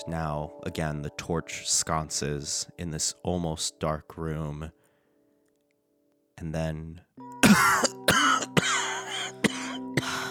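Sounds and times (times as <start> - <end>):
speech: 0.0 - 4.8, 6.4 - 8.2
man coughing harshly: 7.4 - 10.3.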